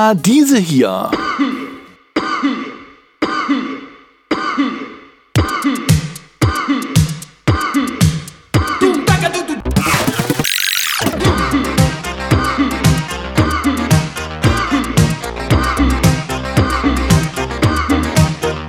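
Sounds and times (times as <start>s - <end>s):
speech: 0.0s - 1.2s
repeated rhythmic coughing on the beat: 0.9s - 10.4s, 11.1s - 18.6s
upbeat synth-driven Italo disco music: 5.4s - 18.6s
loud burst of noise: 9.8s - 11.4s.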